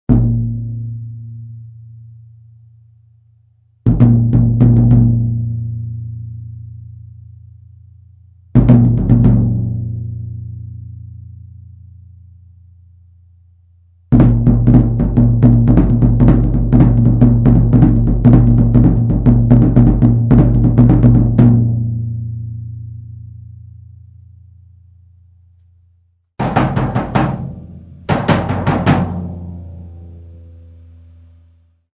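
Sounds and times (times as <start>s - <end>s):
1953 Gretsch 16 floor tom drum: 0.1s - 0.9s, 3.9s - 5.4s, 8.6s - 10.1s, 14.1s - 22.0s, 26.4s - 31.0s.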